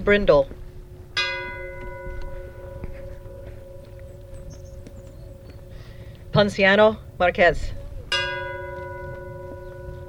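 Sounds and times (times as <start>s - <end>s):
speech: 0.0s - 0.6s, 6.4s - 7.8s
low steady outdoor rumble: 0.0s - 10.0s
deep memorial bell toll: 1.1s - 6.6s, 8.1s - 10.0s.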